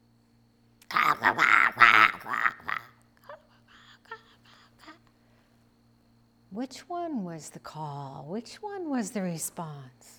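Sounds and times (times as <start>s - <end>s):
loud harsh crow caws: 0.9s - 2.9s
speech: 1.2s - 1.6s, 6.6s - 10.1s.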